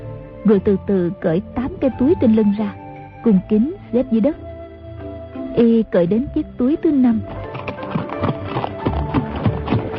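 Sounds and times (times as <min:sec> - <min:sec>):
speech: 0:00.4 - 0:04.4, 0:05.6 - 0:07.4
horses galloping with hooves clattering: 0:07.1 - 0:09.9.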